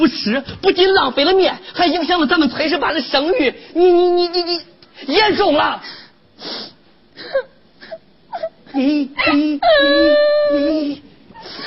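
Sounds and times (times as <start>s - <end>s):
speech: 0.0s - 7.5s, 8.7s - 11.1s
person crying and wailing in distress: 7.2s - 11.6s.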